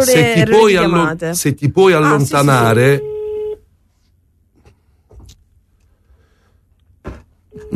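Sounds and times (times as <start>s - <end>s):
speech: 0.0s - 3.1s
faint telephone ringback tone: 2.9s - 3.6s, 7.5s - 7.7s.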